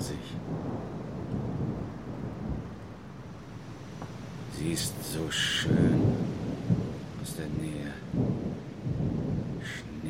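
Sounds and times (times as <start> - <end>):
thunder rumbling from a thunderstorm: 0.0 - 3.1, 4.8 - 10.0
rain: 0.0 - 10.0
speech: 4.6 - 6.4, 7.3 - 10.0.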